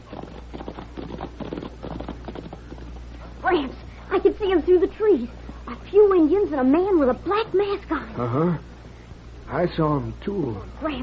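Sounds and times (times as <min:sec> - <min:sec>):
several horses' hooves clip-clopping: 0:00.0 - 0:02.9
speech: 0:03.5 - 0:08.7, 0:09.5 - 0:11.0.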